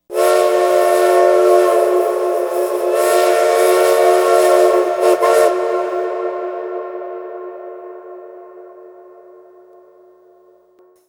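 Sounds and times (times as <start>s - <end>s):
train whistle: 0.0s - 11.0s
train steam: 0.1s - 6.2s.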